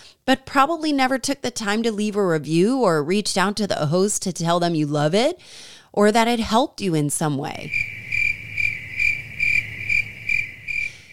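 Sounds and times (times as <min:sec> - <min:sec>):
speech: 0:00.3 - 0:08.0
crickets chirping: 0:07.7 - 0:11.1.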